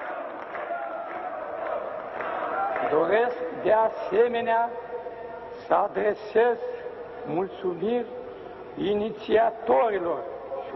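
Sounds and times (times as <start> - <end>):
large crowd roaring at a mass public rally: 0.0 - 2.9
speech: 2.8 - 4.9, 5.7 - 8.2, 8.8 - 10.7.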